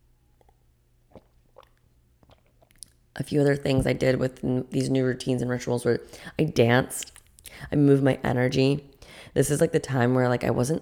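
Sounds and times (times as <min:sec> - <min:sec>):
person sipping water with wet gulping: 0:00.3 - 0:03.2
speech: 0:03.2 - 0:10.7.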